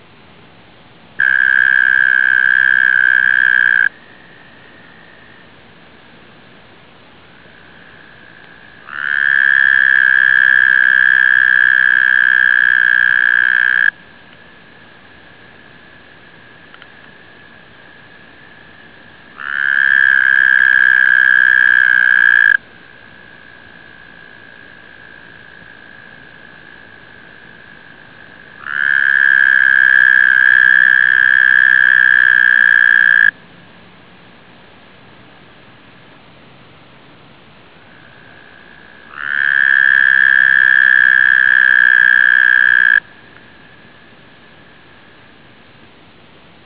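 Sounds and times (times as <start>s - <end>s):
American toad calling: 1.2s - 5.4s, 8.0s - 14.0s, 16.6s - 33.4s, 37.9s - 44.1s.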